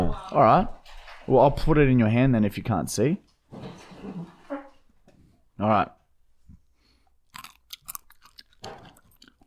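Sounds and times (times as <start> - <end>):
speech: 0.2 - 4.4, 5.6 - 6.0
person chewing a berry: 7.2 - 9.4.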